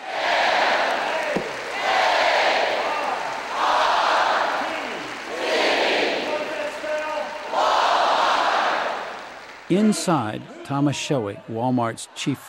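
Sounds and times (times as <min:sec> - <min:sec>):
large crowd cheering and chanting in a basketball arena: 0:00.0 - 0:12.4
speech: 0:09.7 - 0:12.4.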